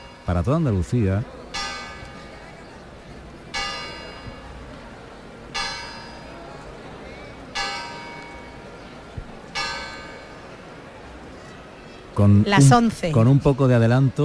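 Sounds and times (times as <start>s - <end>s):
church bell at the Basílica de la Esperanza Macarena tolling eleven o'clock: 0.0s - 2.6s, 3.5s - 4.8s, 5.5s - 6.5s, 7.5s - 8.8s, 9.5s - 10.6s
low murmur: 0.0s - 14.2s
speech: 0.3s - 1.4s, 12.2s - 14.2s.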